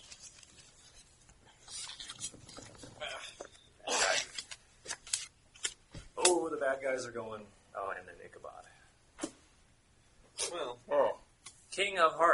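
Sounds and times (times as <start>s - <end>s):
deck of playing cards being shuffled: 0.0s - 6.1s
speech: 6.7s - 8.8s, 10.5s - 11.2s, 11.8s - 12.3s.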